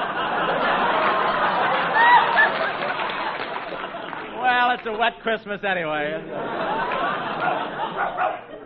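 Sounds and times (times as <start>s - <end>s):
laughter: 0.0s - 5.0s, 6.1s - 8.6s
speech: 4.7s - 8.5s
dog barking: 7.5s - 8.6s.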